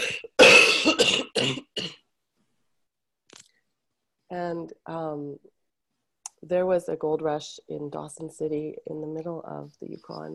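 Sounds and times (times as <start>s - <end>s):
person coughing in a raspy fit: 0.0s - 2.0s
speech: 4.3s - 5.6s, 6.4s - 10.3s.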